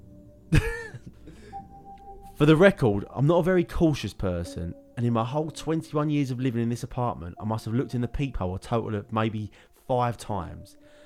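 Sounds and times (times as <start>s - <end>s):
person coughing: 0.5s - 1.6s
speech: 2.4s - 10.8s.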